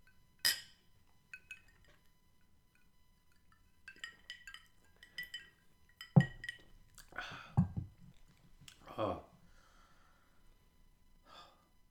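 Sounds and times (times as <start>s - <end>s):
glasses clinking in a toast: 3.3s - 8.2s.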